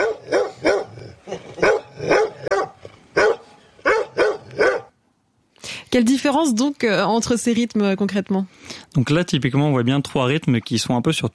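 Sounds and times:
dog barking: 0:00.0 - 0:05.0
speech: 0:05.9 - 0:11.3.

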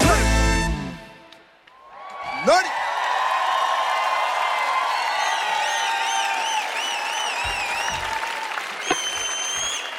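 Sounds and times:
crowd applauding: 0:01.7 - 0:09.9
speech: 0:02.4 - 0:02.8
shrill whistles: 0:05.1 - 0:09.9.

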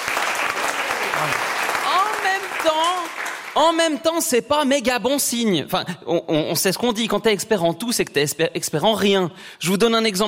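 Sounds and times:
audience dense steady applause: 0:00.0 - 0:03.8
speech: 0:02.6 - 0:10.2.

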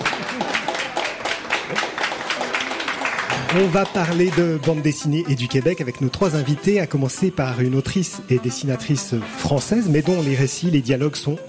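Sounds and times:
live crowd at a comics festival applauding: 0:00.0 - 0:05.4
speech: 0:03.5 - 0:11.4.

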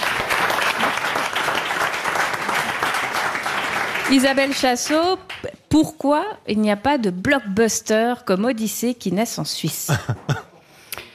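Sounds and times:
audience applause for a guest's wrong answer: 0:00.0 - 0:05.0
speech: 0:04.1 - 0:10.4.

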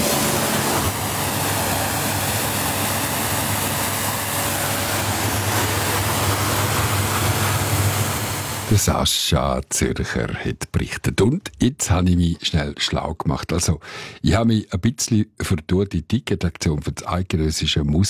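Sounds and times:
high-pressure water jet spraying down a motorboat: 0:00.0 - 0:08.8
low droning motor hum: 0:00.0 - 0:08.8
speech: 0:08.8 - 0:18.0.

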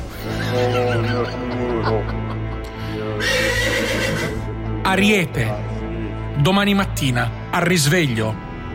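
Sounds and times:
laughter: 0:00.2 - 0:03.2
horse neighing: 0:03.2 - 0:04.5
speech: 0:04.9 - 0:05.6, 0:06.4 - 0:08.5.

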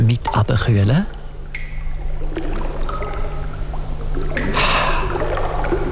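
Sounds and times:
water dripping and trickling in a reverberant cave grotto: 0:00.3 - 0:05.9
speech: 0:00.5 - 0:01.2
splashy burst of water in a cave: 0:01.1 - 0:05.9.

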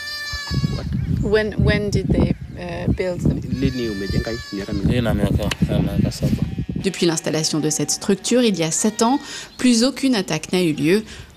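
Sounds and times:
sheep bleating in a fenced livestock enclosure modelled on Maasai bomas: 0:00.0 - 0:00.9, 0:03.5 - 0:09.2
speech: 0:01.2 - 0:11.3.

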